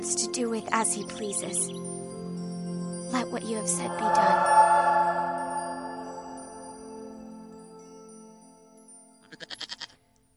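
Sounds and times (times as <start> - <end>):
speech: 0.0 - 2.0, 3.1 - 4.9
goat bleating: 9.2 - 10.0.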